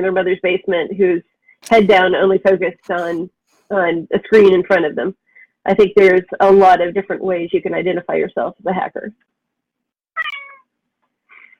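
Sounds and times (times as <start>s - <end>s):
speech: 0.0s - 9.3s
cat meowing: 10.2s - 10.6s.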